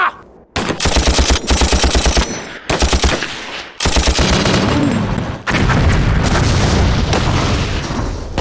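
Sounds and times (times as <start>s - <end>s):
rifle gunfire in a battle: 0.6s - 4.8s
machine gun fire in a battle: 0.6s - 7.3s
heavy booms in a battle: 4.5s - 8.3s.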